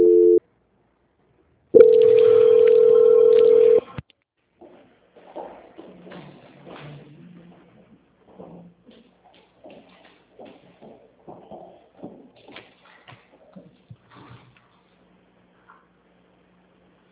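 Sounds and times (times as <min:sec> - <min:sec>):
telephone call transfer tone: 0:00.0 - 0:00.4, 0:01.8 - 0:03.9.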